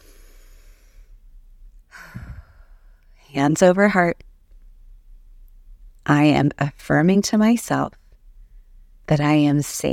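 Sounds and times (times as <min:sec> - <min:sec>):
deep breath during a calming self-affirmation exercise: 0:00.0 - 0:01.2, 0:01.9 - 0:03.0
speech: 0:03.3 - 0:04.3, 0:06.1 - 0:08.0, 0:09.1 - 0:09.9.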